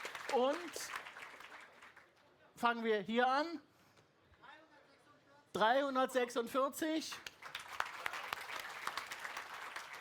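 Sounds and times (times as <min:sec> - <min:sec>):
crowd clapping: 0:00.0 - 0:02.2, 0:07.1 - 0:10.0
speech: 0:00.3 - 0:01.0, 0:02.6 - 0:03.7, 0:05.6 - 0:07.3.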